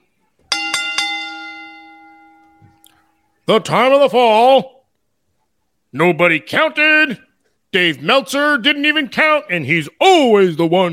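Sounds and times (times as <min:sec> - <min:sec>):
bright metal bell being struck: 0:00.5 - 0:03.0
speech: 0:03.5 - 0:04.8, 0:05.9 - 0:10.9.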